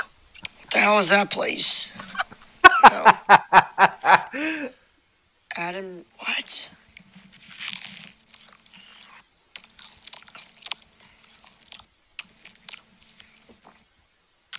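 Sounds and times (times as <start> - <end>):
speech: 0.8 - 2.0, 3.0 - 3.6, 5.6 - 6.8
laughter: 2.0 - 4.7
person chewing something crisp: 6.9 - 14.5.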